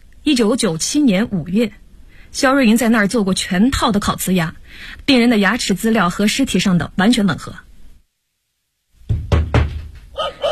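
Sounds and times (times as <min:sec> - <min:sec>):
speech: 0:00.2 - 0:07.6
loud sharp knocks on an apartment door: 0:09.0 - 0:10.2.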